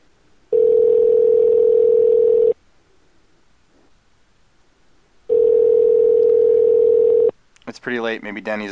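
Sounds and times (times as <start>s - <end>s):
telephone ringback tone: 0.5s - 2.6s, 5.3s - 7.3s
speech: 7.8s - 8.7s.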